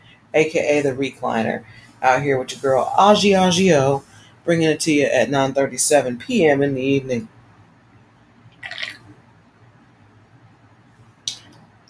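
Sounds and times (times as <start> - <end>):
speech: 0.3 - 7.4
sip from a drink: 8.6 - 9.0.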